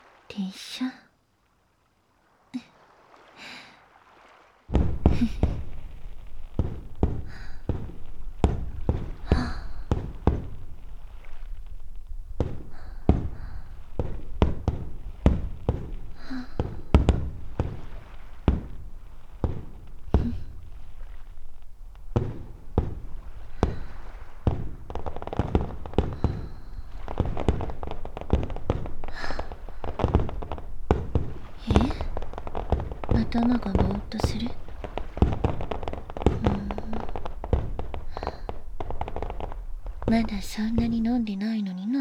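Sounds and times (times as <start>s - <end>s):
speech: 0.3s - 1.0s, 33.5s - 34.6s, 40.1s - 41.9s
fireworks bursting at a fireworks festival: 4.1s - 41.4s.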